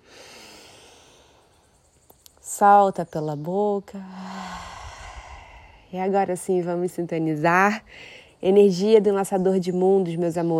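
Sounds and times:
deep breath in through the nose: 0.0s - 1.7s, 4.0s - 6.0s
speech: 2.6s - 4.3s, 5.9s - 10.5s.

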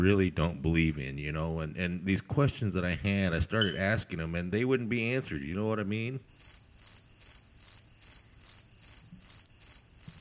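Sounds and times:
speech: 0.0s - 6.6s
crickets chirping: 6.3s - 10.2s.

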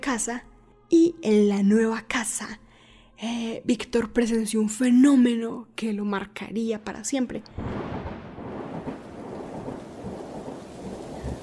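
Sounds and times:
speech: 0.0s - 2.6s, 3.2s - 7.8s
deep thunder rumbling: 7.5s - 11.4s
heavy rain pouring: 7.6s - 11.4s.

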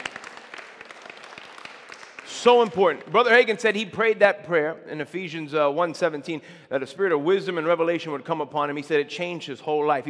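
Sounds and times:
crowd applauding in a large room: 0.0s - 3.6s
speech: 2.4s - 10.0s.

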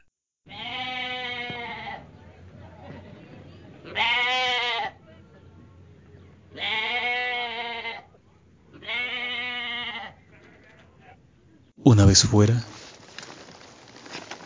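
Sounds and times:
goats or sheep bleating as the herd walks out to graze: 0.5s - 2.0s, 3.9s - 5.0s, 6.6s - 11.2s
steady low rumble of outdoor noise: 0.5s - 14.4s
speech: 12.1s - 12.7s.

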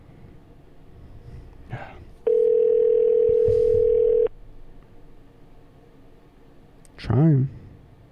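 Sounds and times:
phone call ring tone heard through the line: 2.3s - 4.3s
faint rustle: 3.1s - 4.3s.

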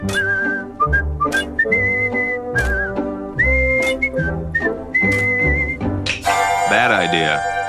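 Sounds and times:
person whistling a bright cheerful tune: 0.0s - 5.9s
bouncy instrumental backing music: 0.0s - 7.6s.

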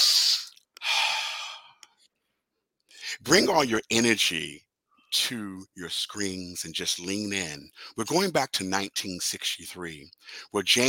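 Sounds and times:
person taking a deep breath: 0.0s - 1.8s
speech: 3.2s - 10.8s.

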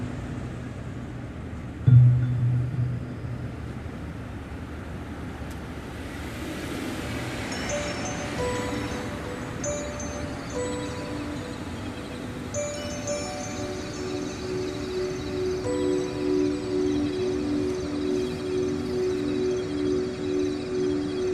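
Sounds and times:
city traffic rumble: 0.0s - 21.3s
large stainless steel wave sound sculpture ringing tones: 1.9s - 4.5s, 7.4s - 21.3s
soft chimes of a light rail station: 7.1s - 21.3s.

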